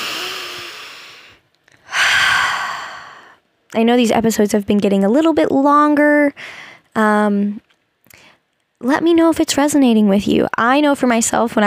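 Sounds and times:
deep breath: 0.0 - 3.4, 6.4 - 6.9
speech: 3.7 - 7.7, 8.8 - 11.6.

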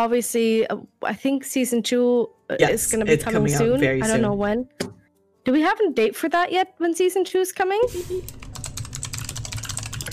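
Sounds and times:
speech: 0.0 - 4.9, 5.5 - 8.4
typing on a computer keyboard: 8.3 - 10.1.

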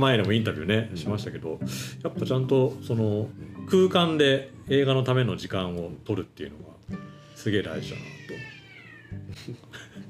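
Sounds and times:
speech: 0.0 - 8.5, 9.1 - 10.0
cat meowing outdoors: 3.3 - 5.0, 7.2 - 9.4.

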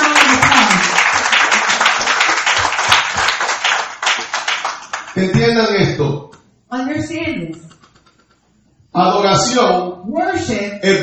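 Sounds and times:
crowd applauding: 0.0 - 5.3
speech: 5.2 - 7.7, 9.0 - 11.0.

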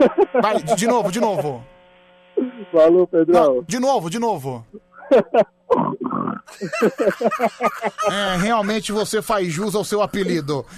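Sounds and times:
laughter: 0.0 - 1.6, 5.0 - 5.6, 6.5 - 9.3
speech: 0.0 - 1.8, 2.7 - 10.7
person imitating pig oinks and grunts: 5.7 - 6.5.

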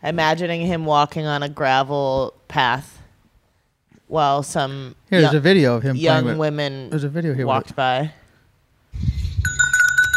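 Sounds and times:
speech: 0.0 - 3.0, 4.1 - 8.2
bell ringing: 9.4 - 10.1.

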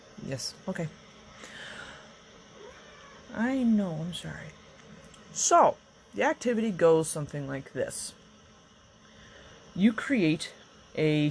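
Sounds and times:
speech: 0.3 - 1.7, 3.3 - 4.6, 5.3 - 8.2, 9.8 - 11.3
cat meowing: 2.6 - 3.3.

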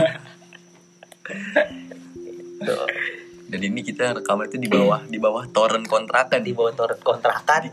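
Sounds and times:
cricket trill outdoors beneath a water tank by a rented house: 0.0 - 7.7
speech: 3.5 - 7.7.

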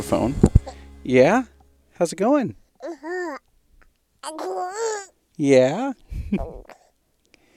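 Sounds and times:
speech: 0.0 - 3.0, 4.3 - 6.7
baby boy babbling: 0.5 - 0.8, 2.8 - 3.5, 4.2 - 5.2, 6.4 - 6.9.

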